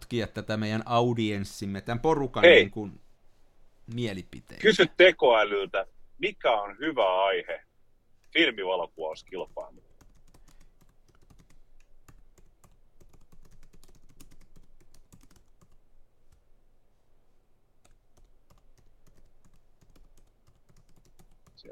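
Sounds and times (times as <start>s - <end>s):
speech: 0.1s - 3.0s, 3.9s - 7.7s, 8.3s - 9.9s
computer keyboard typing: 9.1s - 16.4s, 17.8s - 21.6s.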